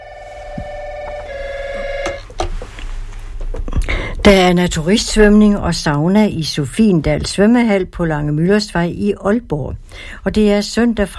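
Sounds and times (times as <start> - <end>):
steady electronic telephone ring: 0.0 - 2.4
speech: 4.2 - 11.1.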